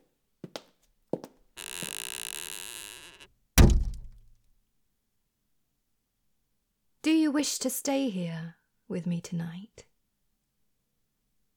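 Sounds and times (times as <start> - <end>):
bedchamber door handle clicks: 1.6 - 4.2
speech: 7.0 - 9.9.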